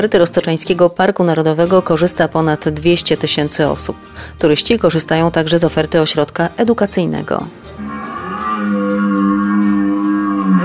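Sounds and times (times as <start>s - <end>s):
speech: 0.0s - 9.5s
red deer roaring during rut fights: 7.7s - 10.6s.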